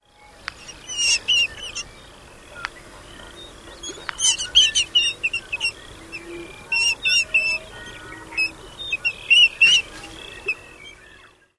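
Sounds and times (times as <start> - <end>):
Short-eared Owl bill snaps in distraction display: 0.4 - 0.6, 3.9 - 4.2
Short-eared Owl squeals in distraction display: 0.7 - 1.8, 4.1 - 5.8, 6.6 - 9.9.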